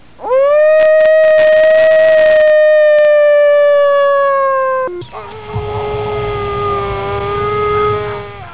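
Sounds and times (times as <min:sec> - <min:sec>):
howling: 0:00.2 - 0:08.5.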